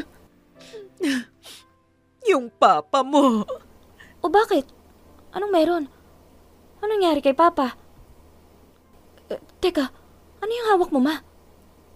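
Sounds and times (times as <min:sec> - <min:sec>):
woman sobbing: 0:00.0 - 0:01.6
woman gasping and whimpering: 0:00.6 - 0:01.7
speech: 0:02.3 - 0:03.6, 0:04.2 - 0:06.0, 0:06.8 - 0:07.8, 0:09.3 - 0:11.3.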